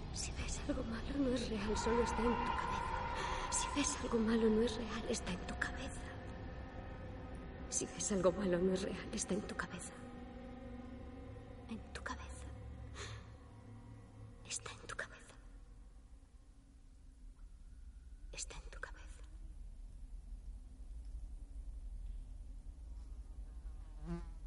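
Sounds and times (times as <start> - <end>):
speech: 0.2 - 6.1, 7.8 - 10.1
mosquito buzzing in a forest: 24.0 - 24.4.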